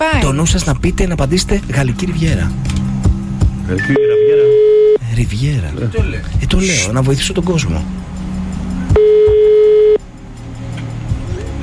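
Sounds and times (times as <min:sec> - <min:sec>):
speech: 0:00.2 - 0:02.8, 0:03.7 - 0:04.0, 0:05.2 - 0:08.0
electronic phone ringback tone: 0:03.9 - 0:05.0, 0:09.0 - 0:10.0.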